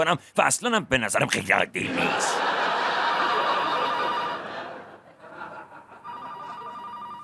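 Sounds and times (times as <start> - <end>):
speech: 0.0 - 2.7
laughter: 1.8 - 6.8
telephone ringing with an electronic trill: 3.5 - 4.7, 6.0 - 7.2.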